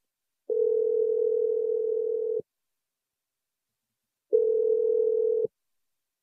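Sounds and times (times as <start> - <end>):
mid-pitched telephone tone while placing a call: 0.5 - 2.4, 4.3 - 5.5.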